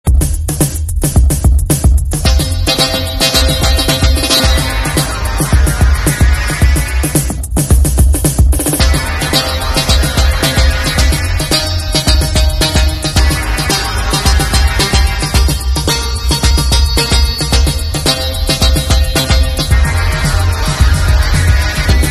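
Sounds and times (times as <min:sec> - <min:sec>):
arpeggiated bass: 0:00.0 - 0:22.0.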